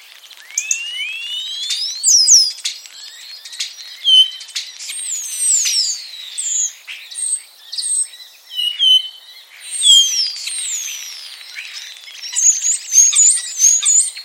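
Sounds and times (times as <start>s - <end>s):
Common starling giving upward-sweeping whistles, clicks and descending notes: 0.2s - 6.7s, 9.8s - 14.2s.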